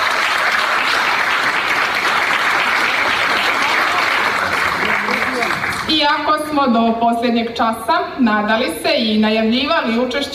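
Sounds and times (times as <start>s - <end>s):
audience applause at an evening folklore festival: 0.0s - 5.9s
speech: 5.9s - 10.3s.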